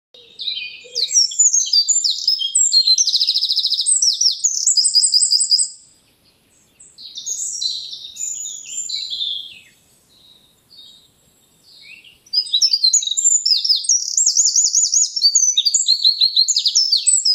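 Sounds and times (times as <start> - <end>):
Eurasian wren Troglodytes troglodytes singing: 0.2 - 17.3.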